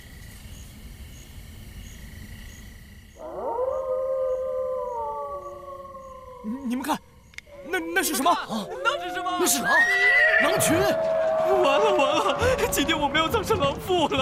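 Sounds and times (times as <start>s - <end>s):
night insects: 0.0s - 14.2s
wolf pack howling: 3.2s - 12.6s
laughter: 10.5s - 14.2s.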